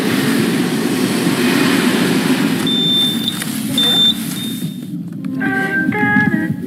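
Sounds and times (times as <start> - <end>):
low rumble of trains at a railway station: 0.0 - 6.6
high tonal train squeals at a railway station: 1.4 - 4.9
high electronic beeps at a railway station: 2.6 - 4.9.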